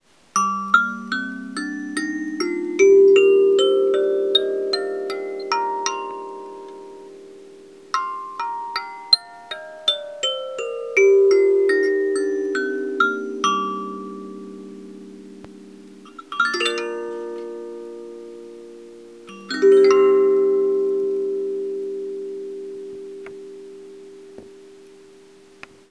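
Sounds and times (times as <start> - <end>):
15 note kalimba mbira playing: 0.4 - 25.3.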